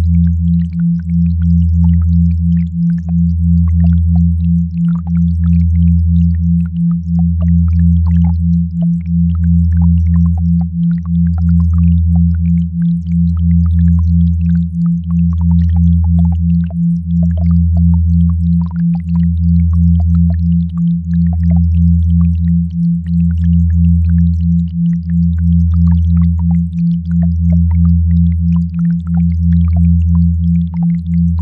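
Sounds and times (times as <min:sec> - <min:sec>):
binaural beat low hum throbbing: 0:00.0 - 0:31.4
faint scattered crackle: 0:00.0 - 0:31.4.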